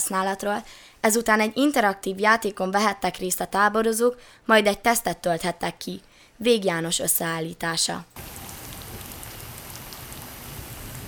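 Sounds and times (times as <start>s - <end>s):
speech: 0.1s - 8.4s
heavy pouring rain: 8.2s - 11.0s.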